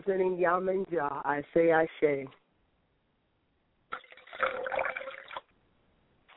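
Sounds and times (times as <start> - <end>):
speech: 0.0 - 2.4
liquid poured out as a libation in a splashing stream: 3.9 - 5.5.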